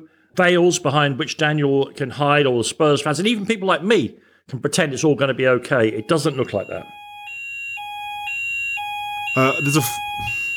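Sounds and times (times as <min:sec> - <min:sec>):
speech: 0:00.4 - 0:07.0, 0:09.4 - 0:10.4
fire alarm steady piercing electronic tone: 0:05.5 - 0:10.5.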